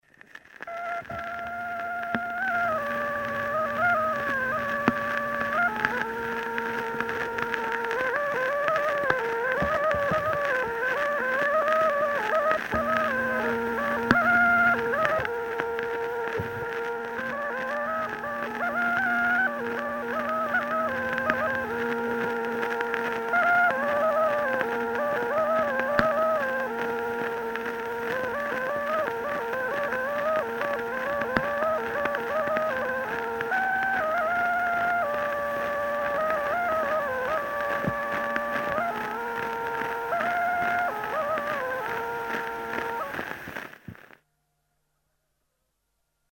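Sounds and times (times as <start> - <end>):
torupill bagpipe folk tune from Kuusalu: 0.7 - 43.7.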